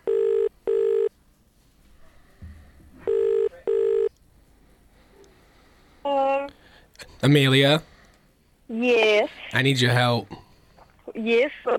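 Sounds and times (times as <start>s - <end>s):
phone call dialing: 0.0s - 1.1s, 3.1s - 4.1s
speech: 7.2s - 7.9s, 8.7s - 10.4s, 11.2s - 11.7s.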